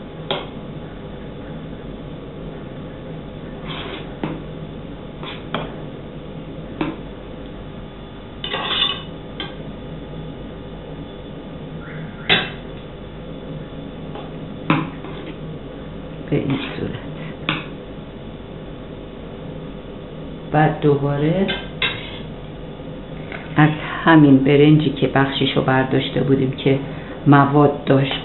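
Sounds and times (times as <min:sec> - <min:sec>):
low steady hum: 0:00.0 - 0:28.2
spoon spreading white rice in a pot: 0:03.6 - 0:04.2, 0:05.2 - 0:05.6, 0:08.5 - 0:09.0, 0:21.8 - 0:22.3
speech: 0:20.8 - 0:21.6, 0:23.6 - 0:28.2.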